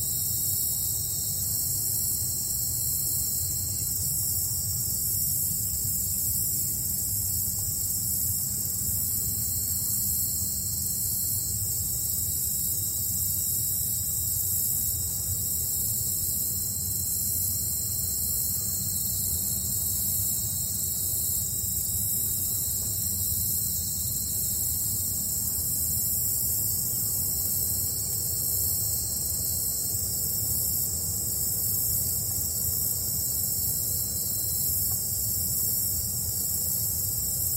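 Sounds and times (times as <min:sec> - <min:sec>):
chorus of buzzing insects in a forest near a large lake: 0:00.0 - 0:37.5.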